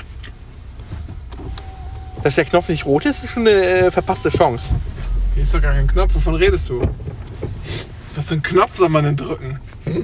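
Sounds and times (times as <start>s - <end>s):
low engine-like rumble inside the vehicle: 0.0s - 9.8s
car electric window motor whirring as glass slides down: 0.9s - 7.5s
speech: 2.2s - 10.0s.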